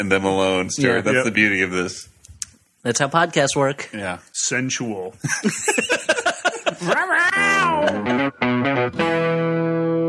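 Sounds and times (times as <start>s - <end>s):
speech: 0.0s - 2.1s, 2.8s - 10.0s
laughter: 5.2s - 8.3s
house cat meowing, warped and electronic-sounding: 7.2s - 8.0s.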